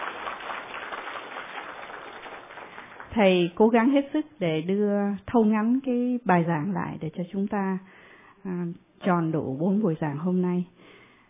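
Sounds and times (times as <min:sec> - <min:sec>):
audience applause for the lecturer: 0:00.0 - 0:03.2
speech: 0:03.1 - 0:10.9.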